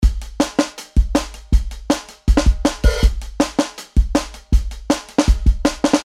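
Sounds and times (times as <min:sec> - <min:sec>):
breakbeat drums at 160 BPM: 0:00.0 - 0:06.0.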